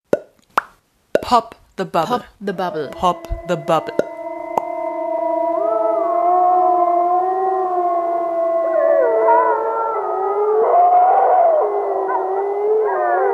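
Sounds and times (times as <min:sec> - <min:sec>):
speech: 0:01.3 - 0:04.1
several wolves howling in chorus: 0:02.7 - 0:13.3.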